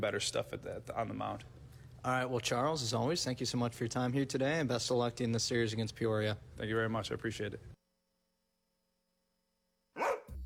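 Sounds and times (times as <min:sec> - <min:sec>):
speech: 0:00.0 - 0:07.7
dog barking: 0:10.0 - 0:10.3.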